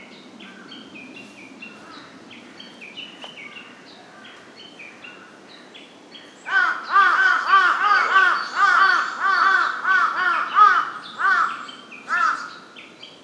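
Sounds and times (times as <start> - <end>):
large-billed crow giving harsh arched caws: 6.5 - 12.6.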